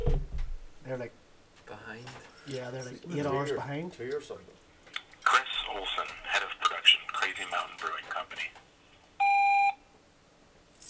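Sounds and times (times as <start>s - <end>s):
hiss: 0.0s - 10.8s
speech: 0.9s - 1.2s, 2.0s - 4.6s
voicemail beep: 9.2s - 9.8s.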